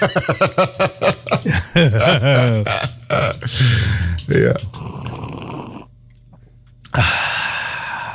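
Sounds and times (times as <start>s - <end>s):
laughter: 0.0s - 3.6s
speech: 0.0s - 4.7s
short throaty vocal sounds: 1.4s - 6.0s, 6.8s - 8.1s
person slurping hot coffee: 4.7s - 5.9s.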